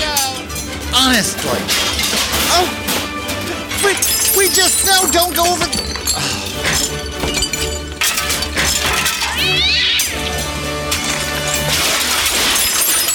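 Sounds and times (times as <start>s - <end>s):
clinking and rattling: 0.0s - 13.1s
speech: 1.0s - 1.9s, 2.6s - 2.8s, 3.8s - 7.0s
cat meowing: 9.4s - 10.2s.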